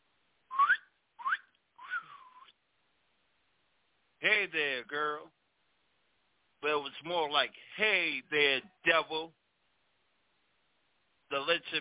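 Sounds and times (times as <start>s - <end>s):
person whistling short tuneful notes: 0.5s - 2.6s
speech: 4.4s - 5.4s, 6.6s - 9.4s, 11.3s - 11.8s.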